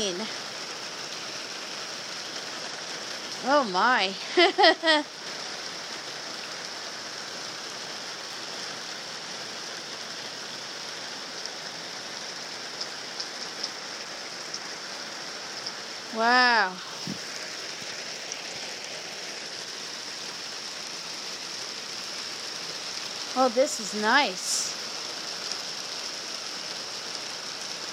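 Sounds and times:
spring rain falling: 0:00.0 - 0:27.9
person exclaiming: 0:03.4 - 0:05.0
speech: 0:03.4 - 0:05.2, 0:16.2 - 0:17.2, 0:23.4 - 0:24.5.

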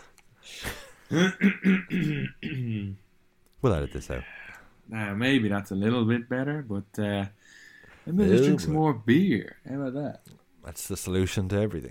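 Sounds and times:
person coughing: 0:00.7 - 0:03.0
rough voiced throat clearing: 0:01.1 - 0:03.0
speech: 0:01.1 - 0:03.0, 0:03.6 - 0:11.8.

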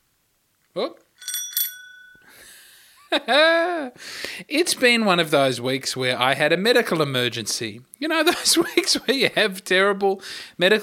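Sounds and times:
speech: 0:00.8 - 0:01.3, 0:03.1 - 0:10.8
small bell ringing: 0:01.2 - 0:02.6.

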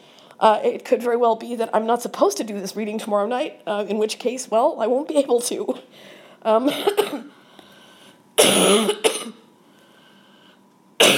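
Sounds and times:
speech: 0:00.4 - 0:07.4
person hacking cough: 0:06.7 - 0:07.3, 0:08.4 - 0:09.4, 0:11.0 - 0:11.1
person clearing throat with a rough rasp: 0:08.4 - 0:09.4, 0:11.0 - 0:11.1.

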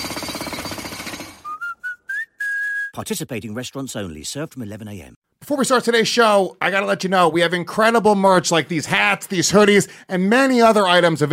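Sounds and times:
jackhammer-like rattling from building a playground: 0:00.0 - 0:01.5
short whistled tones: 0:01.4 - 0:03.0
speech: 0:02.9 - 0:11.3.

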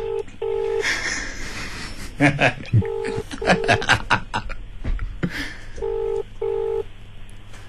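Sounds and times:
phone on speaker dialing out with electronic ringing tones: 0:00.0 - 0:00.8, 0:02.8 - 0:03.9, 0:05.8 - 0:06.9
laughter: 0:00.8 - 0:04.6.

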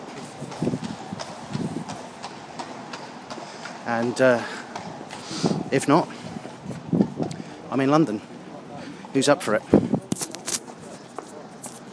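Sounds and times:
horses' hooves clopping on a London street: 0:00.0 - 0:07.4
constant low rumble of traffic-like noise: 0:00.0 - 0:11.9
speech: 0:03.9 - 0:04.6, 0:05.4 - 0:06.2, 0:07.7 - 0:08.3, 0:09.2 - 0:09.9.

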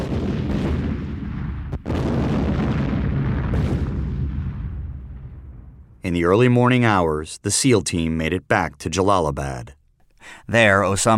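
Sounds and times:
helicopter being blown up in an explosion: 0:00.0 - 0:06.0
speech: 0:06.1 - 0:11.1.

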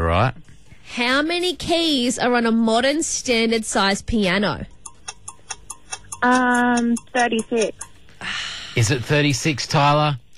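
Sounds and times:
low hum: 0:00.0 - 0:10.3
speech: 0:00.2 - 0:04.8, 0:06.2 - 0:10.2
countdown timer ticking during a quiz game: 0:04.7 - 0:08.2.

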